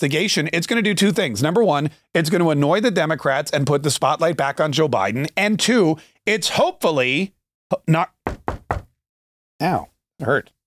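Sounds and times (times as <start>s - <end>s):
speech: 0.0s - 8.2s, 9.6s - 10.6s
knuckles knocking on a wooden surface: 8.3s - 8.9s.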